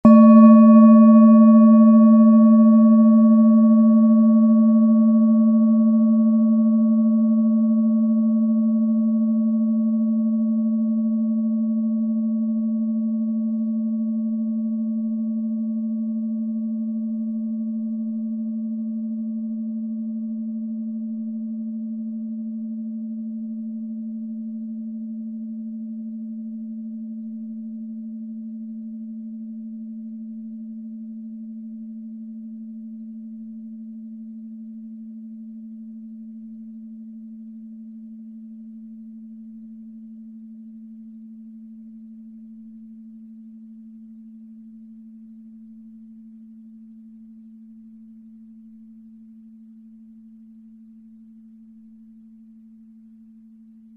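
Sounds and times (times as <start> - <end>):
iron singing bowl: 0.0 - 52.6.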